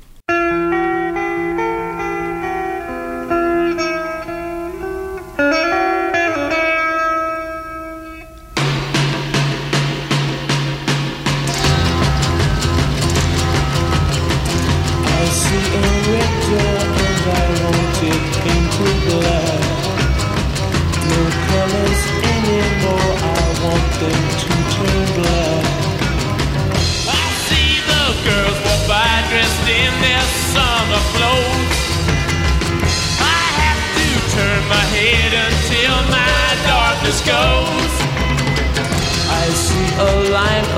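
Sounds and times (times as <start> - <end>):
instrumental rock song played by a full band: 0.0 - 40.7
rock band drums crashing: 8.6 - 40.7.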